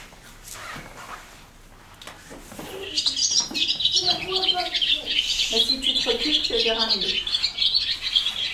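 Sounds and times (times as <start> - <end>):
swallow twittering: 2.7 - 8.5
speech: 5.5 - 7.3.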